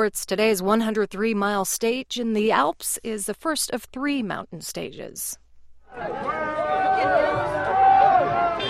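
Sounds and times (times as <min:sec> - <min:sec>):
speech: 0:00.0 - 0:07.4
roadside crowd chatter at cycling race: 0:05.9 - 0:08.6.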